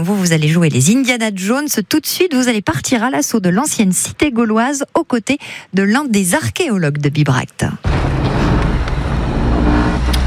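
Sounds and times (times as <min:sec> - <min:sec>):
speech: 0:00.0 - 0:08.0
car engine drone inside a service car: 0:07.8 - 0:10.2
road rumble inside a driving car: 0:07.8 - 0:10.2.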